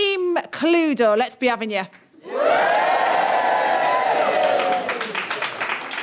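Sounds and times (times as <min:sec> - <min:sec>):
speech: 0:00.6 - 0:02.8
live studio audience cheering and whooping: 0:02.2 - 0:06.0
audience clapping: 0:02.6 - 0:06.0.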